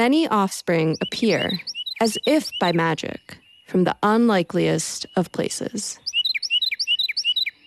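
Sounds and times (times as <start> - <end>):
speech: 0.0 - 6.0
Carolina wren singing loud clear rolling phrases: 0.0 - 7.6.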